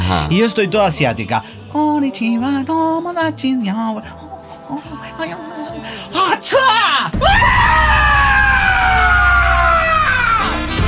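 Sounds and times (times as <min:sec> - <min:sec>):
speech: 0:00.1 - 0:08.2
person imitating people screaming at an airport: 0:06.6 - 0:10.7.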